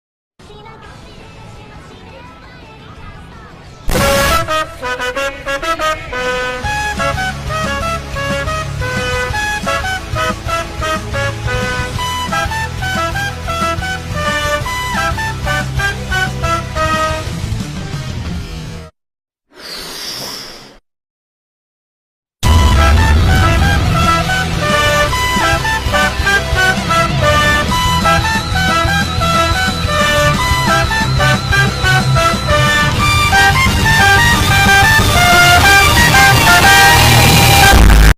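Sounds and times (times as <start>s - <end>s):
trumpet attack: 3.9s - 17.4s, 22.4s - 38.1s.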